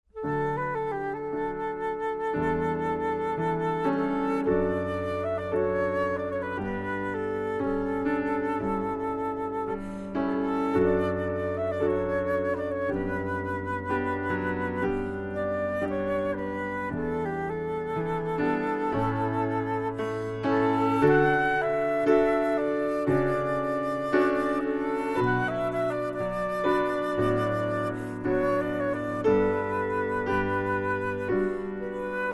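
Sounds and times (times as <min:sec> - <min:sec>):
oboe playing wedding repertoire: 0:00.1 - 0:32.3.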